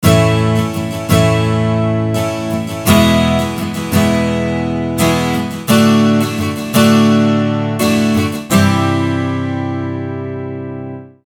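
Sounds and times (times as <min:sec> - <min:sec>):
12 String guitar chords: 0:00.0 - 0:11.2.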